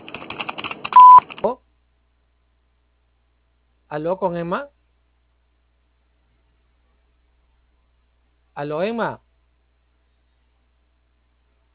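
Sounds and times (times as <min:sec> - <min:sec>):
short steady electronic voicemail beep: 0:01.0 - 0:01.2
speech: 0:03.9 - 0:04.8, 0:08.6 - 0:09.2.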